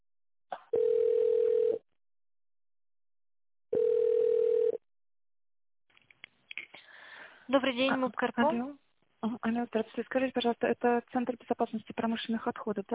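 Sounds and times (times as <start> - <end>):
telephone ringback tone: 0.8 - 1.8, 3.7 - 4.8
speech: 7.5 - 12.9.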